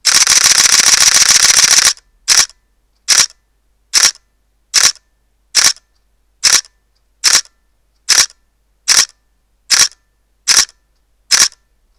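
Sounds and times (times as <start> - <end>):
DSLR camera shutter in continuous high-speed RAW shooting: 0.0 - 2.5, 3.1 - 3.3, 4.0 - 4.2, 4.8 - 5.0, 5.6 - 5.8, 6.4 - 7.4, 8.1 - 8.3, 8.9 - 9.1, 9.7 - 11.6.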